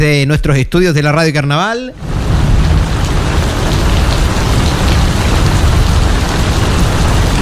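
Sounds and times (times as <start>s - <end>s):
speech: 0.0s - 2.2s
heavy rain falling: 2.0s - 7.3s
thunder: 2.0s - 7.3s.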